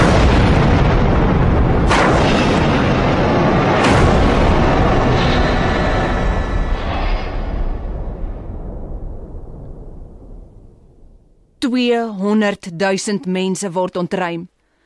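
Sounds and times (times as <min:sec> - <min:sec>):
sharp blasts of the nuclear reactor explosion: 0:00.0 - 0:09.4
explosion at reactor number 1 of the Fukushima nuclear power station: 0:00.0 - 0:11.6
speech: 0:11.7 - 0:14.5.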